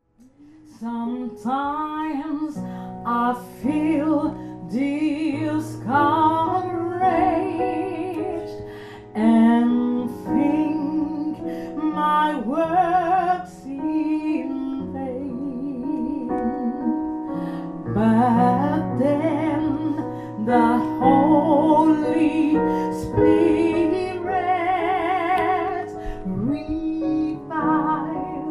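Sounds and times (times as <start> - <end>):
gospel song couplet: 0.2 - 28.4.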